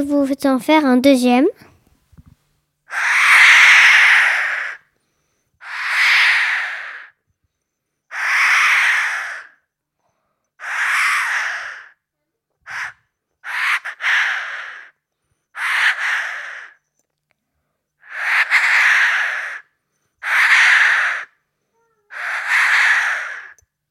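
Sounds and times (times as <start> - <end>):
speech: 0.0 - 1.7
person imitating Eurasian jay screeches: 2.9 - 4.8, 5.6 - 7.2, 8.1 - 9.6, 10.6 - 12.0, 12.7 - 14.9, 15.6 - 16.8, 18.0 - 19.6, 20.2 - 23.6.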